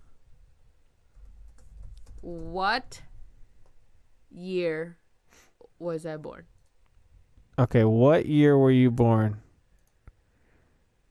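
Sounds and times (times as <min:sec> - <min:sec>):
soft quick typing on a computer keyboard: 0:01.1 - 0:03.0
speech: 0:02.3 - 0:03.1, 0:04.3 - 0:05.0, 0:05.8 - 0:06.5, 0:07.6 - 0:09.4.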